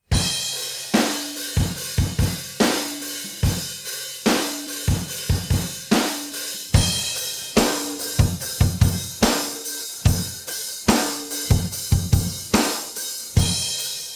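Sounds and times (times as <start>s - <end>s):
drum pattern: 0.1s - 14.1s.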